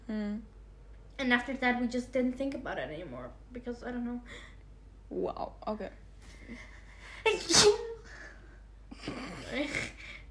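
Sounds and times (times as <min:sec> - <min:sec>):
speech: 0:01.2 - 0:04.5, 0:05.1 - 0:07.9, 0:09.0 - 0:10.0
sharp explosive sneeze: 0:07.3 - 0:08.0
longer breathy drawn-out sneeze: 0:07.4 - 0:07.9.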